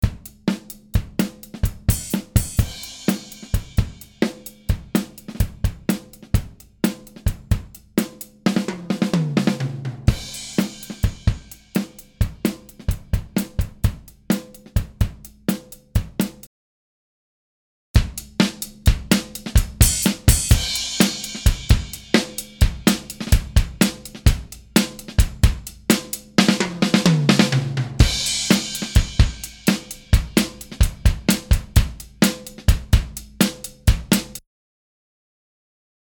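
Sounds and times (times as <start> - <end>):
flat drums with retro console EQ on mid group bus: 0.0 - 16.5, 18.0 - 34.4.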